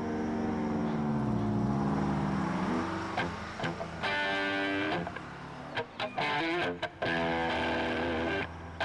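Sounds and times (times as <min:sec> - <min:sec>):
bus driving away down the road, engine droning: 0:00.0 - 0:08.8.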